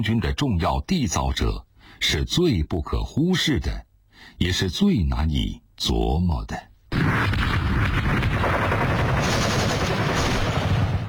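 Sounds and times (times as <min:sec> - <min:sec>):
speech: 0:00.0 - 0:08.6
gunfire crackling in dense rapid bursts: 0:06.9 - 0:11.0.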